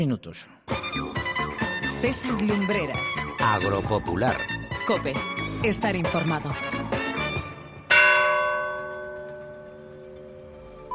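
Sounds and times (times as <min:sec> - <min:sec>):
speech: 0:00.0 - 0:01.2, 0:02.0 - 0:07.0
town hall clock-tower bells striking: 0:07.9 - 0:10.8.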